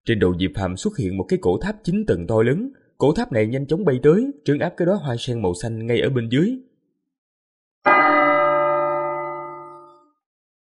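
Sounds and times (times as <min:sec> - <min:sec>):
speech: 0:00.0 - 0:06.7
large golden bell struck with a deep resonant clang: 0:07.9 - 0:10.0.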